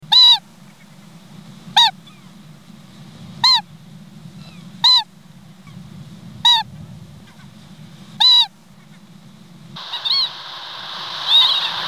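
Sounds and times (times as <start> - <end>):
Whiskered Auklet calling: 0.0 - 1.0, 1.7 - 2.4, 3.4 - 3.8, 4.4 - 5.8, 6.4 - 6.7, 8.2 - 9.0, 9.8 - 11.8.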